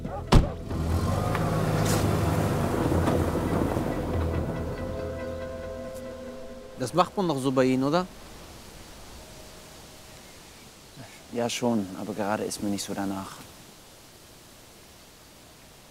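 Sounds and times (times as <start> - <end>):
car door thudding shut: 0.2 - 0.7
new car engine idling with a steady hum: 0.2 - 6.1
speech: 6.9 - 8.3, 11.4 - 13.5.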